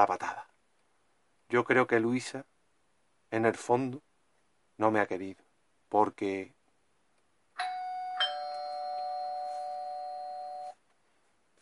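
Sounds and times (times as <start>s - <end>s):
speech: 0.0s - 0.4s, 1.5s - 2.5s, 3.3s - 4.1s, 4.8s - 6.6s
two-tone doorbell chime: 7.6s - 10.8s.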